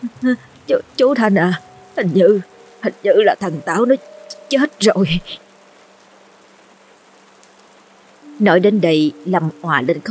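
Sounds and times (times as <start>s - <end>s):
heavy rain pouring down: 0.0s - 10.1s
speech: 0.2s - 5.4s, 8.4s - 10.1s.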